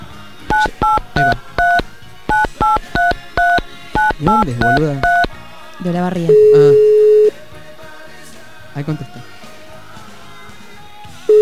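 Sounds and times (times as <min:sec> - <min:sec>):
touch-tone keypad beeps dialing a phone number on a telephone: 0:00.5 - 0:05.3, 0:06.3 - 0:07.3
speech: 0:04.2 - 0:05.2, 0:05.8 - 0:06.9, 0:08.8 - 0:09.3.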